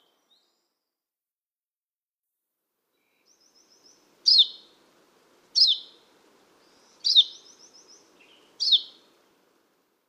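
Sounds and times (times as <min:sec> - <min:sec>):
painted redstart chip calls: 0:04.3 - 0:04.6, 0:05.6 - 0:05.9, 0:06.7 - 0:07.8, 0:08.6 - 0:09.0.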